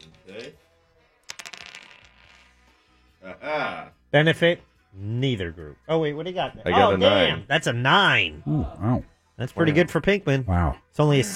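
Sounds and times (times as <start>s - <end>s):
speech: 0.3s - 0.7s, 3.2s - 11.3s
dice clattering across a hard surface: 1.2s - 2.7s.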